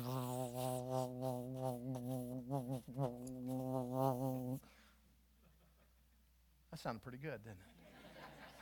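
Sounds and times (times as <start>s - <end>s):
person imitating a hive of buzzing bees with their voice: 0.0s - 4.6s
speech: 6.8s - 7.8s.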